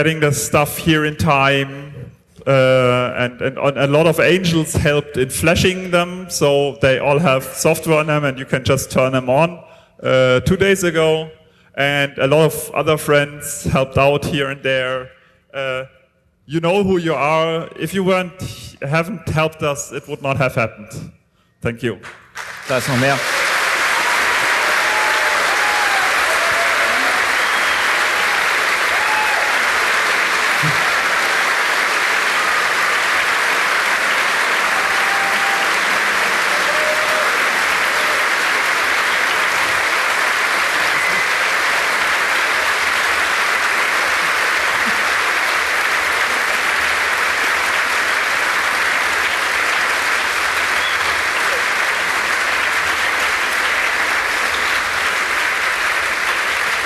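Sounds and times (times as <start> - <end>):
speech: 0.0 - 23.4
loud sustained applause from a large audience: 22.4 - 56.8
faint voices and cheers: 23.2 - 31.4, 34.5 - 38.6, 40.7 - 42.0.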